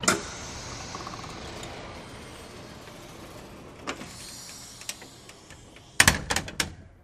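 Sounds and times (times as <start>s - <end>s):
pneumatic hospital door closing: 0.0s - 7.0s.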